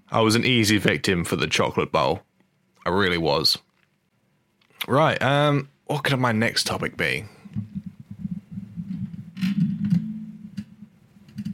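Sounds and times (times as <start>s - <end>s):
speech: 0.1s - 3.6s, 4.8s - 7.4s
microphone boom arm shifting with rumbling and scraping handling noise: 7.4s - 11.5s.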